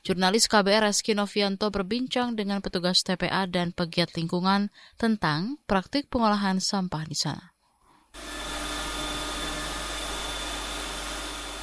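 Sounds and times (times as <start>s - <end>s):
speech: 0.0s - 7.5s
waste sorting machine roaring: 8.2s - 11.6s.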